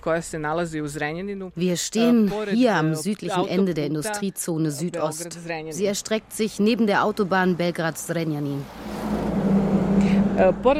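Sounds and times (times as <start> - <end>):
speech: 0.0 - 9.0, 10.4 - 10.7
construction site truck driving past in an industrial zone beside a motorway: 8.2 - 10.7.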